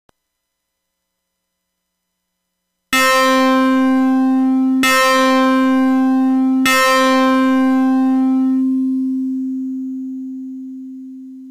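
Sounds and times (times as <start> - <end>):
string-like synth sound from a PIC32: 3.3 - 9.8.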